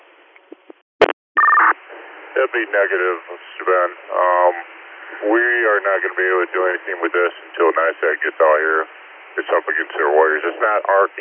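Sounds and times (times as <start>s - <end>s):
radio static crackling: 0.5s - 11.2s
two-tone electronic dispatch alert tone over a radio channel: 1.4s - 1.7s
speech: 2.4s - 11.2s.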